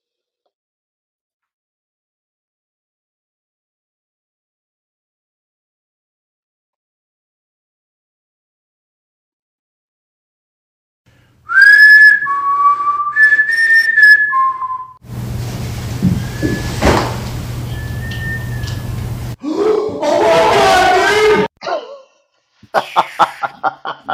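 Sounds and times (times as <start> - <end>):
faint whistle answering with the same tune: 11.5 - 15.0, 16.2 - 16.8, 17.7 - 18.9
person whistling a short melodic tune: 11.5 - 15.0, 17.7 - 18.8
burst of voiced sound: 19.4 - 21.8
laughter: 22.6 - 24.1.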